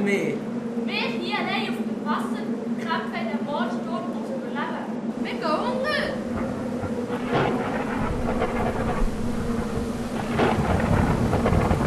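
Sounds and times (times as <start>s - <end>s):
speech: 0.0s - 0.6s, 1.3s - 6.5s
faint buzzing hum: 0.0s - 11.8s
wind in a thunderstorm at sea: 0.0s - 11.8s
thunder rumbles in a thunderstorm at sea: 0.4s - 11.8s
rain in a thunderstorm at sea: 6.2s - 11.8s.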